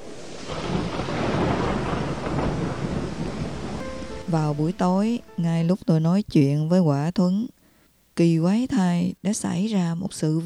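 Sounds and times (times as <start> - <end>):
dense hissing downpour of heavy rain: 0.0 - 5.7
rolling thunder: 0.0 - 5.8
speech: 4.3 - 7.6, 8.2 - 10.4.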